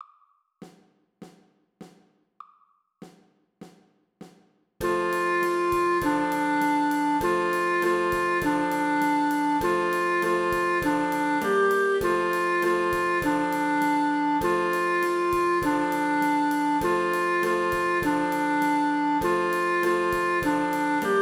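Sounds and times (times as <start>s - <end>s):
trumpet playing: 4.8s - 21.2s.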